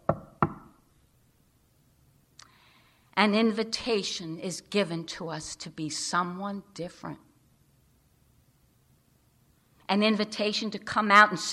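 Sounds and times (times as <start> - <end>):
sharp knocks on a door: 0.0 - 0.7
speech: 3.2 - 7.3, 9.9 - 11.5.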